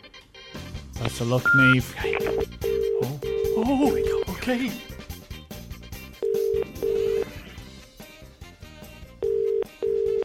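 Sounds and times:
busy musical background: 0.0 - 10.2
speech: 1.0 - 4.9
phone ringing tone in double-ring bursts: 1.4 - 4.4, 6.2 - 7.4, 9.2 - 10.2.

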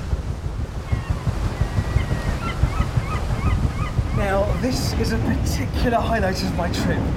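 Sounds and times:
paddle steamer paddles thrashing through water: 0.0 - 6.6
faint high bird calls: 0.9 - 4.8
speech: 4.6 - 7.1.

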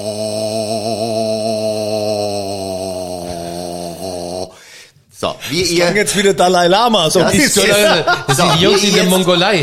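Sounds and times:
low voice singing a long steady O vowel with buzzing overtones: 0.0 - 4.6
speech: 5.2 - 9.6
laughter: 7.2 - 9.5.

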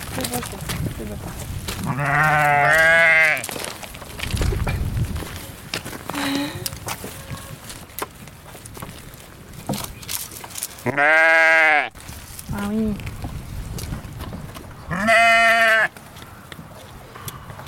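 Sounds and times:
busy outdoor barn noise: 0.0 - 17.6
speech: 0.2 - 3.6, 10.9 - 12.0, 12.6 - 13.0
dairy ewes bleating in a flock: 1.8 - 3.5, 10.8 - 11.9, 14.9 - 15.9.

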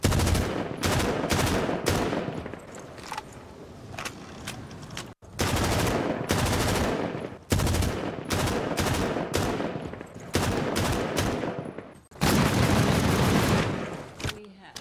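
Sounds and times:
automatic rifle gunfire in loud bursts: 0.0 - 2.5, 5.4 - 14.1.

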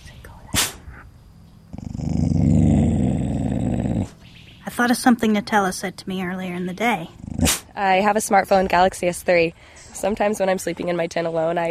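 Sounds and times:
dog growling: 1.7 - 4.3, 7.0 - 7.8
speech: 4.8 - 11.6.

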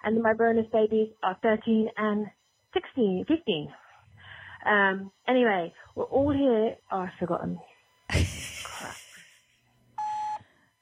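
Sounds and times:
speech: 0.0 - 3.8, 4.6 - 9.0
laughter: 8.1 - 9.3
phone call disconnect electronic beep: 10.0 - 10.4.

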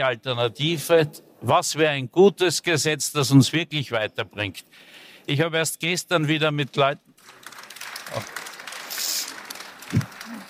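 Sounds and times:
speech: 0.0 - 7.4, 8.1 - 8.4
audience applause: 7.2 - 10.4.

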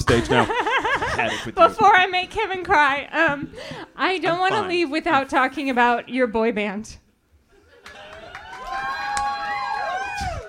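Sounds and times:
laughter: 0.0 - 1.8, 4.1 - 4.8
speech: 0.1 - 0.6, 1.2 - 7.0
large audience clapping: 7.8 - 10.4
excited voices whooping and shouting: 7.9 - 10.4.

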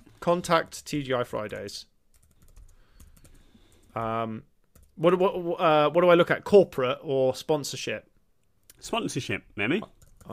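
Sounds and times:
speech: 0.2 - 1.9, 4.0 - 8.1, 8.8 - 10.3
typing on a computer keyboard: 1.4 - 3.9.

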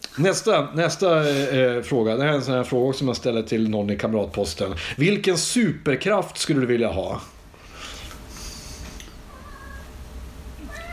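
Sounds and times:
speech: 0.2 - 7.4
cat meowing: 9.3 - 10.0, 10.6 - 10.9.

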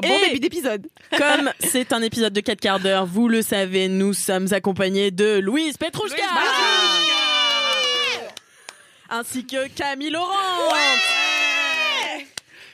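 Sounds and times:
speech: 0.0 - 7.2, 9.1 - 11.2
woman letting out high-pitched cheering screams: 6.2 - 8.3, 10.5 - 12.3.

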